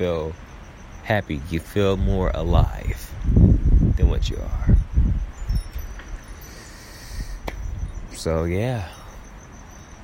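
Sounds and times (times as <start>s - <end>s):
speech: 0.0s - 4.8s, 8.2s - 9.0s
rustling leaves: 0.0s - 10.0s
wind blowing outdoors: 0.0s - 10.0s
faint ticks: 7.3s - 7.7s.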